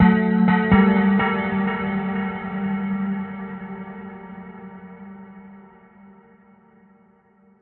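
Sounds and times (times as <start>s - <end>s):
bell echoes: 0.0s - 5.8s.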